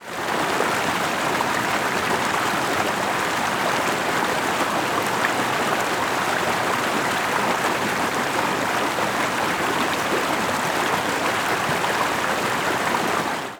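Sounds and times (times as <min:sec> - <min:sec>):
small water rapids: 0:00.0 - 0:13.5.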